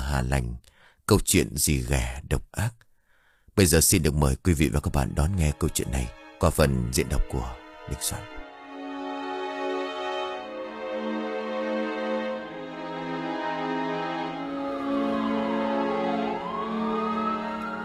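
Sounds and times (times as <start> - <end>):
speech: 0.1 - 2.8, 3.6 - 8.4
ambulance siren wailing in a village: 10.1 - 17.8.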